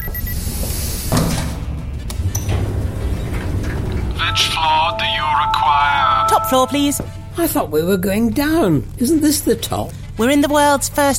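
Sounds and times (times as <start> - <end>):
steady mechanical hum: 0.0 - 11.1
elevator doors sliding shut: 0.4 - 7.2
speech: 4.4 - 11.1.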